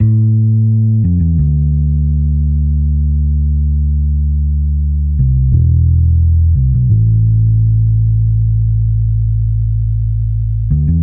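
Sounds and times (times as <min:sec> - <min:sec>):
raw bass line in D at 87 BPM: 0:00.0 - 0:11.0.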